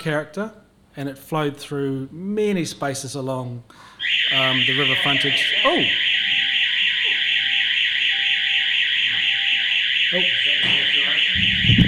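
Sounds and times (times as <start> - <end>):
speech: 0.0 - 6.3, 10.1 - 10.4
faulty fire alarm sounding inside a building: 4.0 - 11.8.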